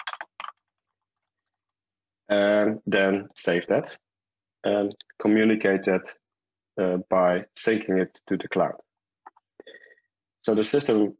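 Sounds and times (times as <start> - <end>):
typing a comment on a computer keyboard: 0.0 - 0.6
speech: 2.3 - 4.0, 4.6 - 6.2, 6.8 - 8.9, 10.4 - 11.1.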